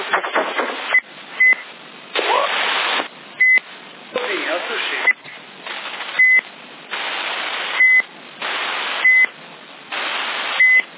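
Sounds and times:
broadband hiss and radio noise over CB radio: 0.0s - 10.9s
short high electronic beeps over CB radio: 6.2s - 6.4s, 7.8s - 8.1s, 9.0s - 9.3s, 10.6s - 10.9s.

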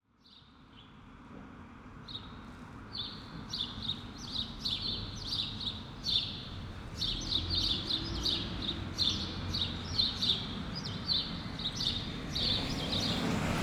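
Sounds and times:
sparrows chirping on a city street: 3.5s - 13.4s
cars passing: 6.5s - 13.6s.

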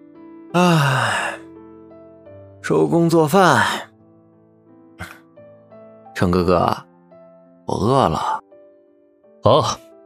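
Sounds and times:
soft steady music: 0.0s - 10.0s
speech: 0.5s - 1.4s, 2.7s - 3.9s, 6.2s - 6.9s, 7.7s - 8.4s, 9.4s - 9.8s
person yawning: 0.6s - 1.5s.

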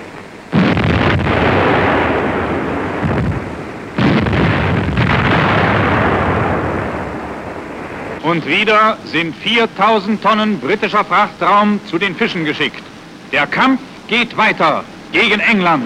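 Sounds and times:
naval gun salvos fired from a German warship: 0.5s - 8.2s
speech: 8.3s - 15.8s.

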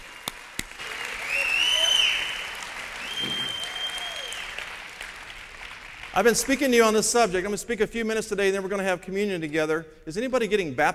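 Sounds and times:
congregation applauding at a church service: 0.0s - 7.3s
speech: 6.2s - 10.9s.

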